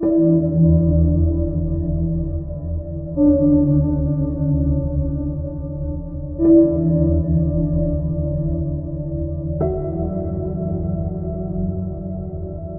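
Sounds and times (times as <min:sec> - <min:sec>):
ambient plucked notes in D major: 0:00.0 - 0:12.7.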